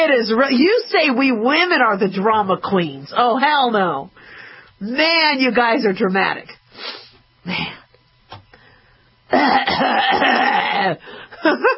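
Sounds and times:
speech: 0.0s - 4.2s, 4.8s - 7.8s, 9.3s - 11.7s
voice imitating exaggerated theatrical coughing: 9.3s - 11.7s.

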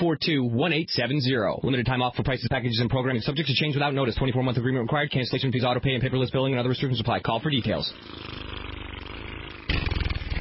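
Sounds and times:
speech: 0.0s - 8.7s
voice imitating a motorboat engine with a buzzing lip trill: 5.9s - 10.3s.

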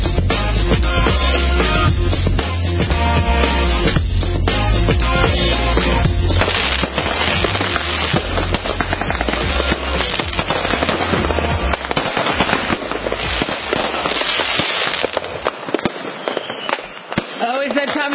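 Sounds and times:
dense barrage of fireworks crackling and popping: 0.0s - 18.1s
low booms of fireworks: 1.8s - 16.3s.

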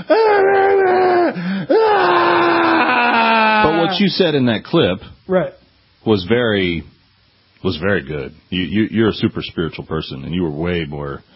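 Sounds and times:
man groaning with a low strained groan: 0.0s - 4.1s
man screaming: 0.0s - 4.1s
speech: 3.9s - 6.9s, 7.6s - 11.3s.

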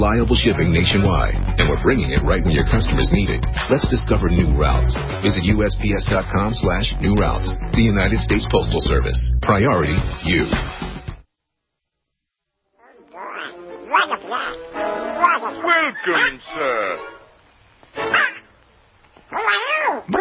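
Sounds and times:
speech: 0.0s - 10.8s, 16.0s - 17.2s
voice imitating a cartoon duck character quacking: 12.8s - 17.1s, 18.1s - 18.5s.

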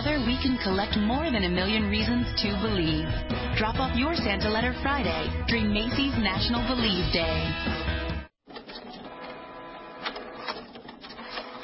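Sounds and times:
speech: 0.2s - 7.9s
inkjet printer whirring and clattering: 8.5s - 11.6s.

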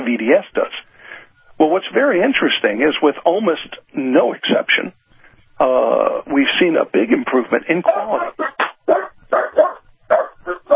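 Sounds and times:
speech: 0.1s - 0.8s, 1.6s - 5.0s, 5.6s - 9.0s
dog barking: 7.9s - 10.7s.

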